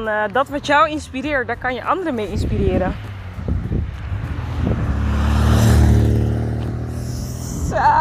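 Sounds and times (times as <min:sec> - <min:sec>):
speech: 0:00.0 - 0:03.1, 0:07.8 - 0:07.9
wind noise brushing the microphone: 0:01.9 - 0:07.9
small French car driving past: 0:02.8 - 0:07.9.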